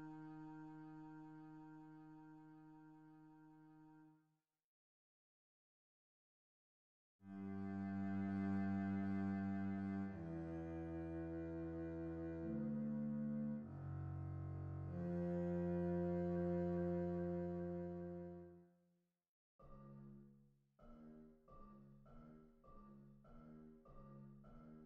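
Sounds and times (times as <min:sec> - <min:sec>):
very slow string bass: 0:07.3 - 0:18.4.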